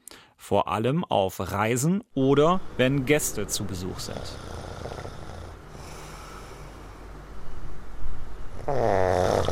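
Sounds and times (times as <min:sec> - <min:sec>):
speech: 0:00.5 - 0:04.6, 0:08.7 - 0:09.5
person snoring: 0:04.1 - 0:07.0, 0:08.6 - 0:09.5.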